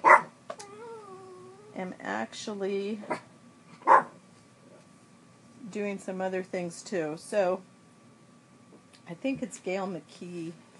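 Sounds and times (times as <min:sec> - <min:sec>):
dog barking: 0:00.0 - 0:00.3, 0:03.8 - 0:04.2
dog whining yelps: 0:00.0 - 0:01.8
speech: 0:01.8 - 0:03.3, 0:05.7 - 0:07.7, 0:09.1 - 0:10.6.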